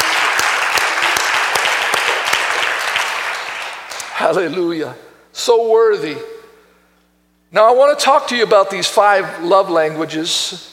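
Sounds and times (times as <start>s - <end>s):
church audience clapping hands on Palm Sunday: 0.0s - 4.2s
speech: 4.3s - 6.3s, 7.5s - 10.7s.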